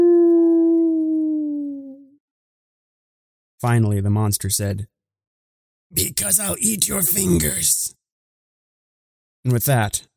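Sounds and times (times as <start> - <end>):
coyote howling: 0.0 - 2.0
speech: 3.6 - 5.0, 5.9 - 8.0, 9.4 - 10.1.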